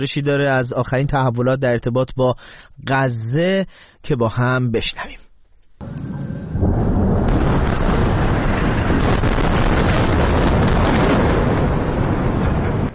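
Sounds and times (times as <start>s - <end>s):
speech: 0.0s - 5.2s
bombing explosion rumbling: 5.8s - 12.9s.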